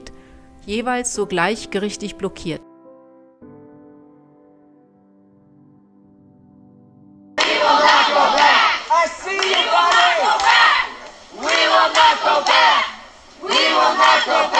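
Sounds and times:
speech: 0.7 - 2.7
crowd of pro-choice activists chanting and shouting in protest outside a judge's house: 7.4 - 14.5.

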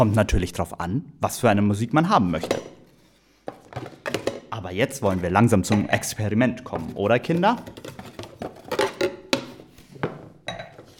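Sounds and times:
speech: 0.0 - 2.7, 4.6 - 8.1
thin-rimmed wine glasses set down on a hard surface clinking: 10.5 - 10.8.

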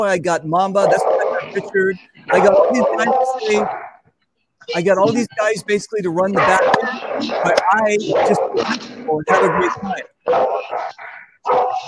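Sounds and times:
speech: 0.0 - 3.8, 4.6 - 11.8
dog barking and yipping: 0.8 - 4.0, 6.2 - 11.8.

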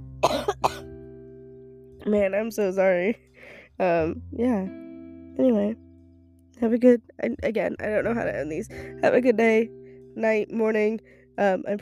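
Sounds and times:
low steady hum: 0.0 - 11.8
person coughing harshly: 0.2 - 0.8
speech: 2.1 - 4.8, 5.4 - 5.8, 6.6 - 11.8.

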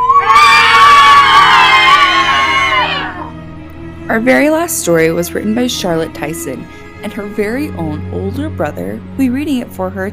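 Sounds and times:
several voices screaming high-pitched: 0.0 - 3.3
speech: 4.1 - 10.1.

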